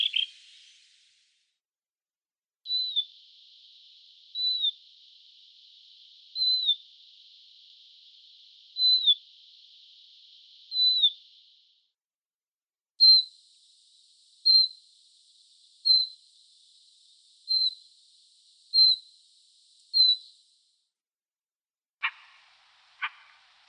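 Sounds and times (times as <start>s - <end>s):
Siberian rubythroat giving a clear down-slurred whistle: 0.0s - 0.7s, 2.7s - 4.9s, 6.4s - 6.8s, 8.8s - 9.2s, 10.7s - 11.3s, 13.0s - 13.3s, 14.5s - 14.8s, 15.9s - 16.2s, 17.5s - 17.8s, 18.8s - 19.0s, 20.0s - 20.3s, 22.0s - 23.6s
faint hiss: 22.0s - 23.6s.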